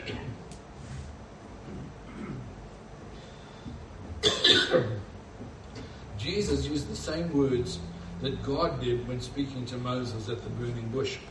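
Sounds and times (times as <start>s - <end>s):
coughing and throat clearing from a tickle in the throat: 0.0s - 0.4s, 1.7s - 2.5s, 4.2s - 5.0s
low noise: 0.0s - 11.2s
speech: 4.7s - 5.1s, 6.3s - 11.2s.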